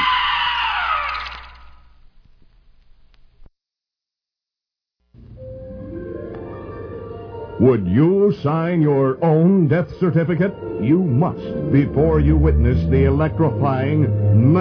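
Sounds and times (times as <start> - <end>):
wailing cry: 0.0 - 1.3
shrill scream in a horror film trailer: 0.0 - 1.8
speech: 7.6 - 14.5.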